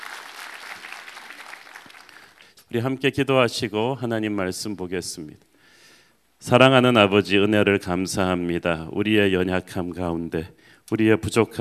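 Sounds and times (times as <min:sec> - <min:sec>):
congregation applauding during a church worship service: 0:00.0 - 0:02.6
speech: 0:02.7 - 0:05.5, 0:06.4 - 0:11.5.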